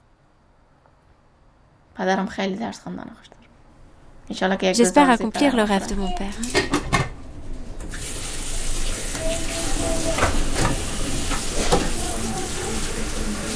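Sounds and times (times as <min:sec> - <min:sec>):
speech: 0:02.0 - 0:03.4, 0:04.3 - 0:07.0
water running from a tap: 0:07.8 - 0:13.5.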